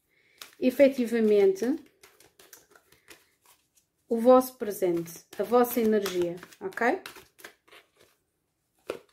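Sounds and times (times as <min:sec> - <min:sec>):
tarot card brushing and tapping on a table: 0:00.4 - 0:03.9, 0:04.7 - 0:08.2
speech: 0:00.6 - 0:01.9, 0:04.1 - 0:07.2.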